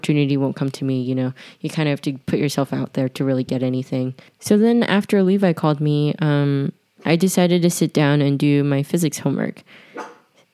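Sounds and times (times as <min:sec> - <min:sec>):
speech: 0:00.0 - 0:10.1
dog barking at the door: 0:10.0 - 0:10.3.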